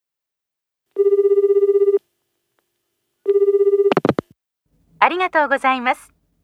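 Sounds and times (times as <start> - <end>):
telephone ringing on an outgoing call to an automated redelivery line: 1.0 - 2.0, 3.3 - 4.2
speech: 5.1 - 6.2.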